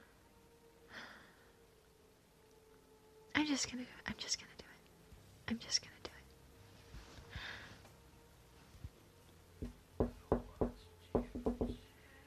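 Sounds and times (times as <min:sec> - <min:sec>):
speech: 0:03.4 - 0:04.7, 0:05.5 - 0:06.0
breathy rustling: 0:06.8 - 0:08.0
odd syncopated knocking raps: 0:09.6 - 0:11.8.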